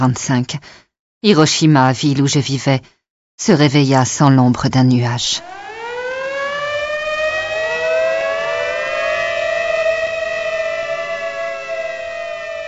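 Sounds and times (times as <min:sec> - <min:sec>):
speech: 0:00.0 - 0:05.7
air raid sirens wailing: 0:05.3 - 0:12.6.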